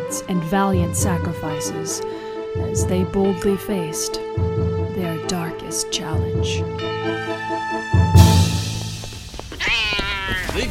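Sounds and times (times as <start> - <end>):
speech: 0.1 - 7.9
cat meowing: 9.5 - 10.6.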